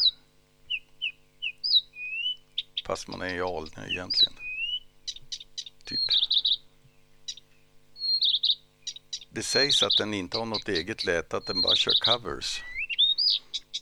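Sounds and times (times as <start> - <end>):
Blyth's reed warbler singing: 0.0 - 13.8
speech: 2.9 - 4.5, 5.9 - 6.2, 9.4 - 12.7.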